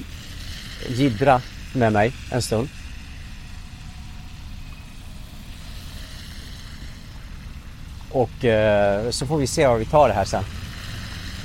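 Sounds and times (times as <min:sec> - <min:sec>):
city street traffic: 0:00.0 - 0:11.4
speech: 0:00.8 - 0:02.8, 0:08.2 - 0:10.6.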